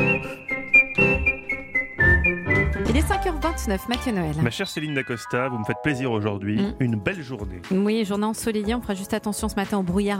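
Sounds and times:
whistled radio jingle melody: 0.0 - 6.8
light rhythmic musical backing: 0.0 - 10.1
speech: 3.0 - 10.1.

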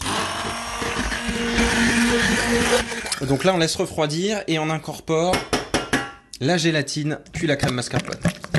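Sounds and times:
immersion blender whirring through thick caramel cream: 0.0 - 3.2
speech: 2.4 - 5.6, 6.4 - 8.4.

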